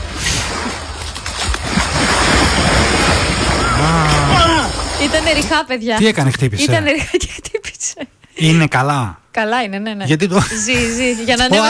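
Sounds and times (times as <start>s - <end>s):
sea waves: 0.0s - 5.7s
speech: 5.2s - 11.6s.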